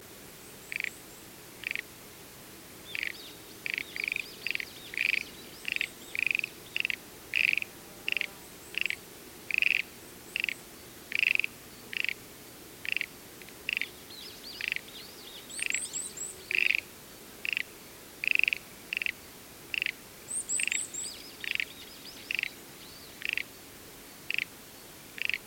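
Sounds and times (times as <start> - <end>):
Schlegel's green tree frog calling: 0.6 - 1.0, 1.6 - 1.9, 2.9 - 12.2, 12.8 - 13.1, 13.7 - 14.0, 16.5 - 22.6, 23.2 - 23.5, 24.3 - 24.5, 25.2 - 25.4.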